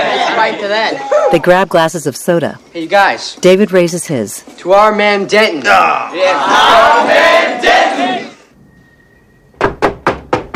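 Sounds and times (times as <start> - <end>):
speech: 0.4 - 8.0
knocking on a door: 9.6 - 10.5.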